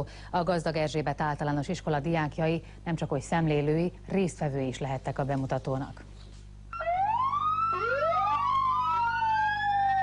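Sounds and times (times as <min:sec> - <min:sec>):
speech: 0:00.0 - 0:06.1
police siren wailing with two overlapping tones: 0:06.7 - 0:10.0.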